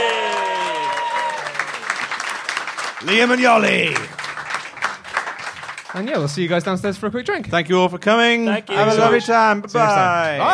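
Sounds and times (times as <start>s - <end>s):
crowd cheering for birthday: 0.0s - 6.0s, 10.1s - 10.5s
crowd applauding for birthday: 0.0s - 6.7s
speech: 3.0s - 4.2s, 6.0s - 10.5s.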